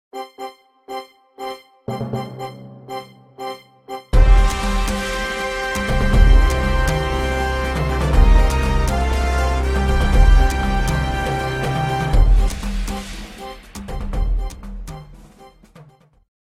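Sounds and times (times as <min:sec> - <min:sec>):
news jingle: 0:00.2 - 0:15.6.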